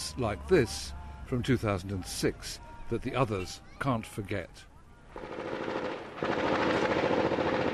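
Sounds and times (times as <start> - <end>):
speech: 0.2 - 5.6
automatic gunfire at dawn in Sadr City in 2006: 5.2 - 7.7.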